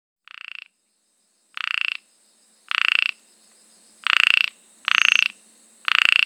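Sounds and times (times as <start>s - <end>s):
ornate narrow-mouthed frog Microhyla ornata giving buzzy pulsed croaks: 0.3s - 0.7s, 1.6s - 2.0s, 2.7s - 3.2s, 4.0s - 6.2s.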